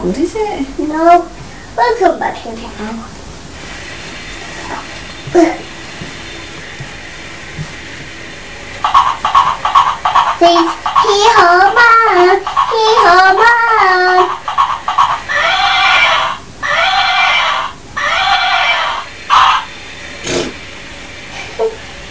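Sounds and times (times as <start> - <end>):
speech: 0.0 - 3.2, 4.8 - 5.7, 10.4 - 14.4
donkey braying on a beach: 8.9 - 19.7.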